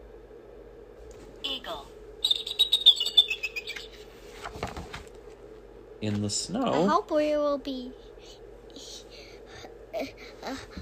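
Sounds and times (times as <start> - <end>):
speech: 1.5 - 2.0, 6.0 - 8.0, 10.0 - 10.8
eagle call: 2.2 - 4.0.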